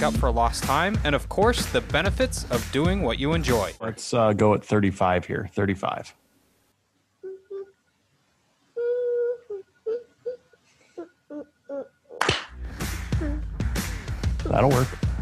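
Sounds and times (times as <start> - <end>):
speech: 0.0 - 6.2, 14.5 - 15.0
toddler singing: 7.2 - 7.8, 8.8 - 12.2, 13.2 - 13.4.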